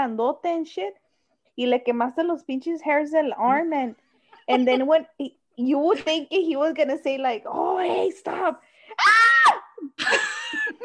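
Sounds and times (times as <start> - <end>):
speech: 0.0 - 1.0, 1.6 - 9.1
voice imitating a high-pitched scream: 9.0 - 9.9.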